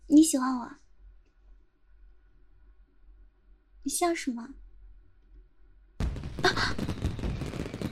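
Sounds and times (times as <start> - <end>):
speech: 0.3 - 0.8, 3.8 - 4.6
fireworks crackling pops and bursts: 6.0 - 7.8
fireworks exploding with loud boom: 6.0 - 7.8.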